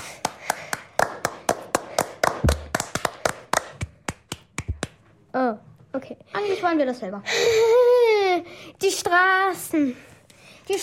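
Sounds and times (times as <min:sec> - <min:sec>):
hands clapping: 0:00.0 - 0:05.1
speech: 0:05.4 - 0:07.9, 0:08.8 - 0:10.1.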